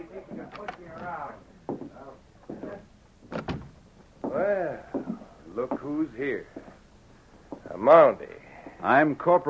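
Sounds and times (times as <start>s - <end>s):
office door opening with latch and frame rattling: 0.5s - 1.2s, 3.3s - 3.8s
speech: 5.6s - 6.6s, 7.8s - 9.4s.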